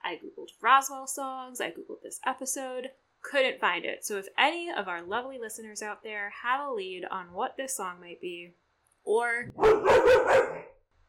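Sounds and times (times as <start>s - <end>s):
speech: 0.1s - 10.5s
dog barking: 9.6s - 10.7s.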